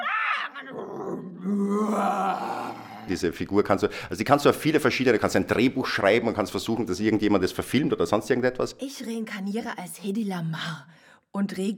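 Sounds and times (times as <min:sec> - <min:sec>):
person's voice imitating a lion's roar: 0:00.0 - 0:03.2
speech: 0:03.1 - 0:11.7.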